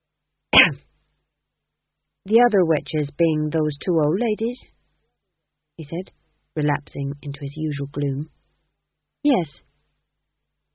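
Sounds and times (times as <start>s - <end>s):
man coughing: 0.6s - 0.8s
speech: 2.3s - 4.8s, 5.8s - 8.4s, 9.2s - 9.7s.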